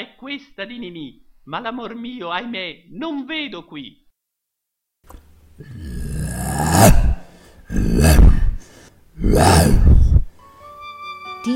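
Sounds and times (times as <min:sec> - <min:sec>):
speech: 0:00.0 - 0:04.0, 0:05.0 - 0:05.9, 0:09.3 - 0:09.8
male actor imitating a lion's roar: 0:05.6 - 0:10.3.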